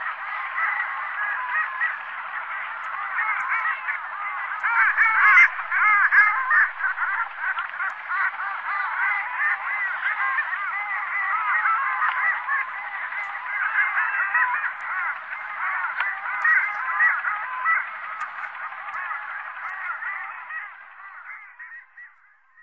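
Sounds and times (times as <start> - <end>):
flock of long-tailed ducks calling on Sakhalin and Kuril Islands: 0.0 - 22.6.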